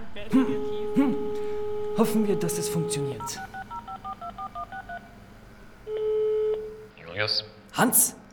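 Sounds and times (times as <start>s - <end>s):
steady telephone tone of a line connecting: 0.0s - 6.9s
speech: 0.2s - 1.2s, 2.0s - 3.5s, 7.2s - 8.2s
telephone keypad beeps while dialing a call: 3.2s - 5.0s.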